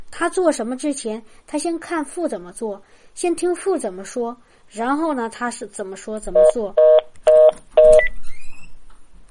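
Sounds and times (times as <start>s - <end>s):
speech: 0.2s - 6.9s
telephone keypad dialing tones: 6.4s - 8.1s.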